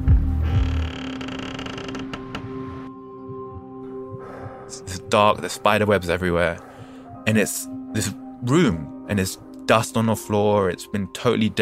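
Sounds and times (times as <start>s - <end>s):
heavy wooden door creaking open: 0.4s - 2.9s
speech: 4.7s - 6.7s, 7.3s - 11.6s.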